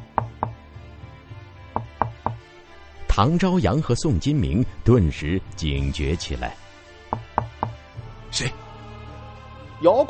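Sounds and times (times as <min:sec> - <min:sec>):
knuckles knocking on the wooden door of a cave dwelling at night: 0:00.0 - 0:00.6, 0:01.8 - 0:02.4, 0:07.1 - 0:07.8
speech: 0:03.2 - 0:06.6, 0:08.3 - 0:08.6, 0:09.8 - 0:10.0.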